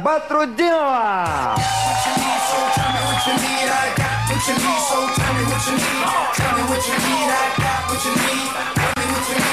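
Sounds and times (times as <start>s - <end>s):
speech: 0.0s - 9.5s
steady thumping musical beat: 1.3s - 9.5s
audience whoops and whistles: 1.4s - 3.8s
loud audience applause: 1.6s - 9.5s.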